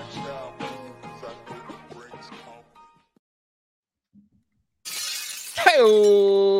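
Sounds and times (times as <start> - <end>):
glass shattering sound effect: 4.8 - 6.4
speech: 5.6 - 6.4.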